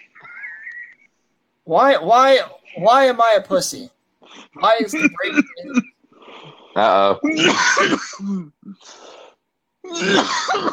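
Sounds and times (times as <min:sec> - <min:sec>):
speech: 0:01.7 - 0:05.9, 0:06.8 - 0:09.1, 0:09.9 - 0:10.7
man coughing: 0:04.9 - 0:06.0, 0:06.8 - 0:08.8, 0:09.9 - 0:10.7
man clearing throat: 0:06.8 - 0:08.8, 0:09.9 - 0:10.7.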